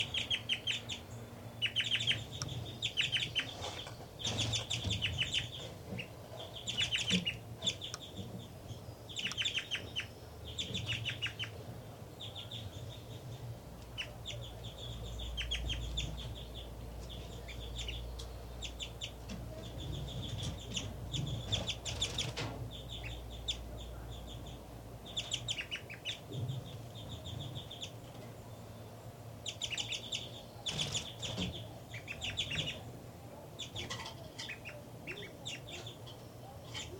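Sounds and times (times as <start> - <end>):
adult bird calling and singing while feeding nestlings at the nest: 0.0 - 11.6, 12.2 - 32.9, 33.6 - 36.9
low rumble: 0.0 - 36.9.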